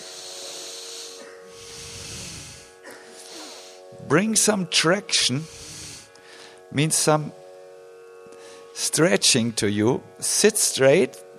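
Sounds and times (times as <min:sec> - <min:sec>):
person breathing deeply during a breathing exercise: 0:00.0 - 0:04.2, 0:05.3 - 0:06.7, 0:08.3 - 0:08.7
faint steady hum: 0:00.0 - 0:11.3
speech: 0:04.1 - 0:05.6, 0:06.7 - 0:07.4, 0:08.8 - 0:11.3.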